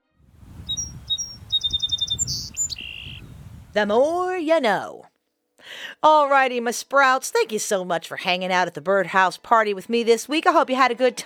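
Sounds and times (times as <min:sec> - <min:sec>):
low steady outdoor rumble: 0:00.3 - 0:04.4
song sparrow singing: 0:00.6 - 0:04.1
speech: 0:03.7 - 0:05.1, 0:06.0 - 0:11.2.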